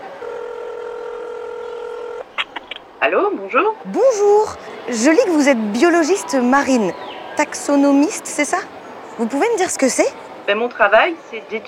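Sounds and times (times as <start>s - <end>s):
steady electronic phone dialing tone: 0.0s - 2.2s
speech: 3.0s - 11.6s.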